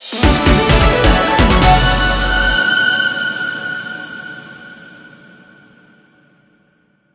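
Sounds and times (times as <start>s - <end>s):
outro music: 0.0s - 4.7s.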